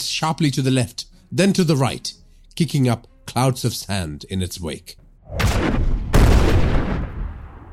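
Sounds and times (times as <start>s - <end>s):
speech: 0.1s - 5.8s
RPG explosion striking a vehicle: 5.3s - 7.7s.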